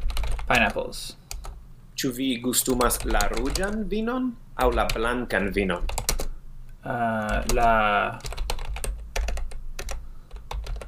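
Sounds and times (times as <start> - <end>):
typing on a computer keyboard: 0.0 - 1.6, 2.7 - 3.8, 5.8 - 6.3, 7.2 - 10.8
speech: 0.5 - 1.2, 2.0 - 6.1, 6.8 - 8.3.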